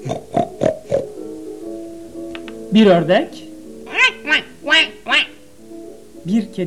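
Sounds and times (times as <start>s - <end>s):
pig grunting oinks: 0.0s - 1.1s
speech: 0.1s - 0.5s, 2.7s - 3.5s, 6.3s - 6.6s.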